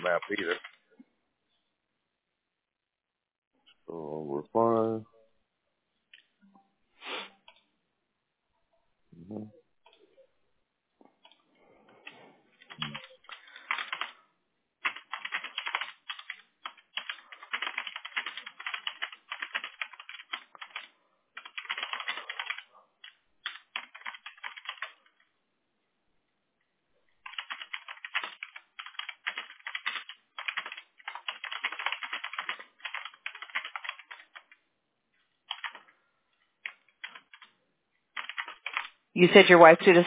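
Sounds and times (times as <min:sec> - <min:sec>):
speech: 0:00.0 - 0:00.7, 0:03.9 - 0:05.1, 0:09.2 - 0:09.6, 0:39.2 - 0:40.0
typing on a computer keyboard: 0:00.0 - 0:00.8, 0:12.6 - 0:14.2, 0:14.8 - 0:25.2, 0:27.2 - 0:34.6, 0:35.5 - 0:35.9, 0:36.6 - 0:37.5, 0:38.1 - 0:39.0.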